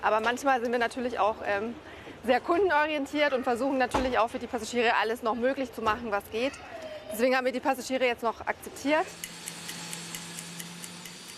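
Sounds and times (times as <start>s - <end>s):
speech: 0.0s - 9.3s
clock ticking: 9.2s - 11.3s.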